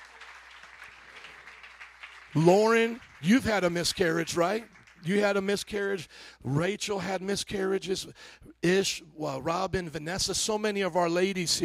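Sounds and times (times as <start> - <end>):
crowd clapping hands in applause: 0.0 - 6.0
speech: 2.3 - 11.6.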